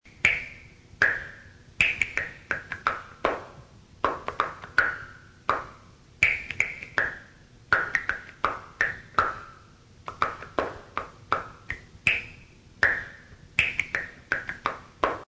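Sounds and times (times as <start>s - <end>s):
finger music: 0.1s - 15.2s.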